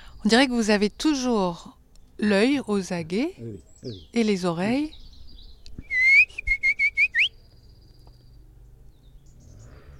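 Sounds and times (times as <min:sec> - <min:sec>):
speech: 0:00.2 - 0:05.0
person whistling an imitation of a nightingale's song: 0:05.8 - 0:07.4.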